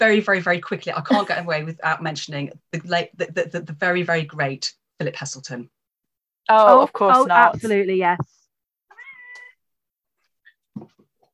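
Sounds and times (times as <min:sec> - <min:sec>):
speech: 0:00.0 - 0:05.8, 0:06.4 - 0:08.4
cat meowing: 0:08.9 - 0:09.6.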